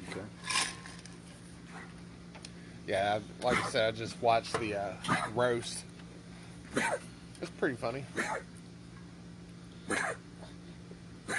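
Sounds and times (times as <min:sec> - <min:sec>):
speech: 0:02.9 - 0:05.9, 0:06.8 - 0:08.6, 0:09.9 - 0:10.2
old female dog on medication coughing: 0:03.5 - 0:03.8, 0:05.0 - 0:05.4, 0:06.7 - 0:07.1, 0:08.1 - 0:08.5, 0:09.9 - 0:10.5.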